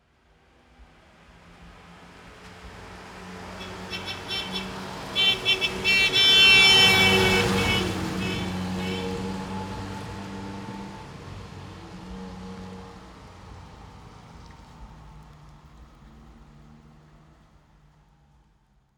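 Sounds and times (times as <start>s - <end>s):
Fiat car passing by at fast speed: 0.7s - 17.9s
car horn honk: 3.6s - 9.6s.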